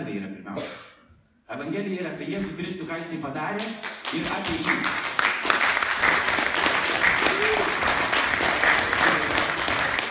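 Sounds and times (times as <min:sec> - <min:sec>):
speech: 0:01.6 - 0:05.1
church audience applause during a sermon: 0:04.0 - 0:10.0.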